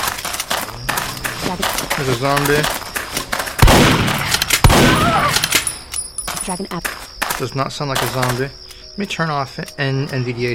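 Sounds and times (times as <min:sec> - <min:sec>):
grenade explosions in a zombie video game: 0:00.0 - 0:05.9
speech: 0:01.5 - 0:03.3, 0:06.5 - 0:10.5.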